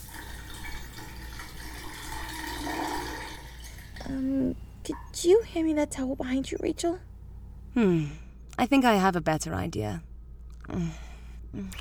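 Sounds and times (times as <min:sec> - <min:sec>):
shower water running: 0:00.0 - 0:04.2
speech: 0:04.1 - 0:07.1, 0:07.8 - 0:10.1, 0:10.7 - 0:11.7.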